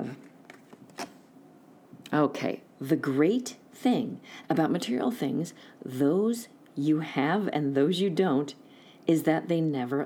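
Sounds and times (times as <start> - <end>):
deck of angel cards being shuffled: 0.2 - 1.2
speech: 2.1 - 10.0.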